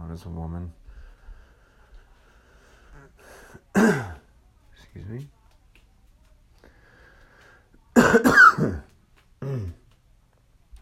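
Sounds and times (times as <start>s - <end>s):
speech: 0.2s - 0.8s, 5.0s - 5.4s
person coughing from congestion: 3.7s - 4.2s, 8.0s - 9.8s
rough throat clearing from congestion: 8.0s - 9.8s.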